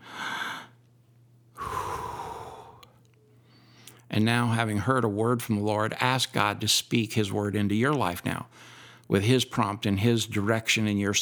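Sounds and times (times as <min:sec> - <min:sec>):
deep breath: 0:00.0 - 0:00.8, 0:01.6 - 0:04.1, 0:08.5 - 0:09.1
speech: 0:04.2 - 0:11.1.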